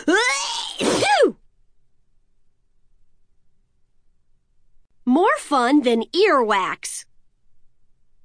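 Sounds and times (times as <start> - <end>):
voice performing a theatrical sneeze: 0.7 - 1.4
speech: 5.5 - 7.1.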